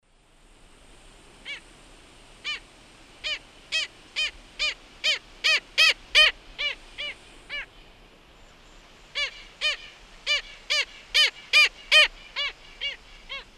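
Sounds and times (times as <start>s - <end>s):
Rynchops niger flock calls in South American Eastern Lowlands: 3.2s - 7.7s, 9.1s - 13.5s.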